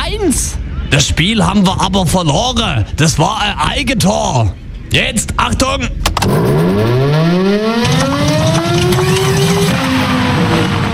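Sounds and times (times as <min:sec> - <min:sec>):
constant noisy background: 0:00.0 - 0:10.9
speech: 0:00.2 - 0:09.5
mechanical siren winding up: 0:06.2 - 0:10.3.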